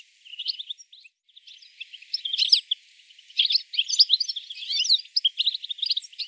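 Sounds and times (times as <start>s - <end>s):
European goldfinch Carduelis carduelis calls: 0.0s - 6.2s.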